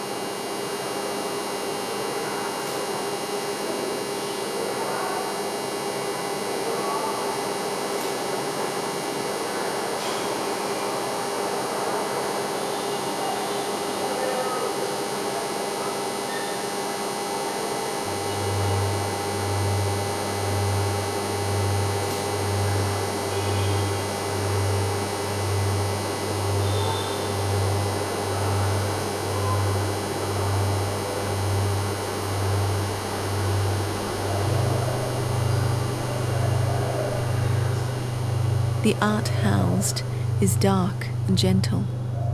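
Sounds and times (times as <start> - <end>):
mechanical hum of fans and dehumidifiers: 0.0 - 42.3
deep low-pitched throb: 18.1 - 42.3
speech: 38.9 - 42.0.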